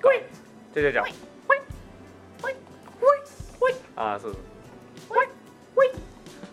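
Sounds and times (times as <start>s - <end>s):
speech: 0.8s - 1.3s, 4.0s - 5.4s
person imitating a dog barking: 1.0s - 1.8s, 2.4s - 3.9s, 5.0s - 6.1s.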